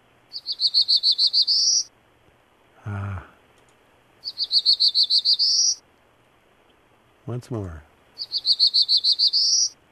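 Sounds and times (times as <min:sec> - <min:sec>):
Black-throated Blue Warbler singing: 0:00.3 - 0:01.9, 0:04.2 - 0:05.8, 0:08.2 - 0:09.8
speech: 0:00.4 - 0:01.9, 0:04.7 - 0:05.9, 0:07.3 - 0:09.8.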